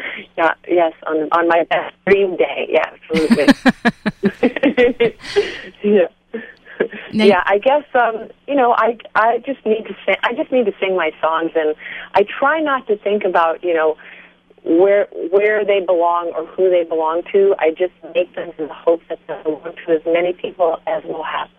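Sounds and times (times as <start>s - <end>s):
faint steady hum on a cell phone line: 0.0s - 21.5s
speech: 0.4s - 6.2s, 7.1s - 21.5s
laughter: 3.2s - 5.7s
person talking over a narrowband cell phone line: 7.2s - 7.6s.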